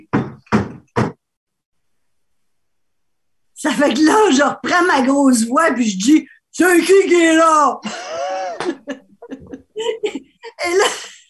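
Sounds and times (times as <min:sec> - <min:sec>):
police knocking on a back door leading into a bedroom: 0:00.0 - 0:01.2
speech: 0:03.7 - 0:08.2, 0:09.8 - 0:11.1
laughter: 0:07.8 - 0:11.2.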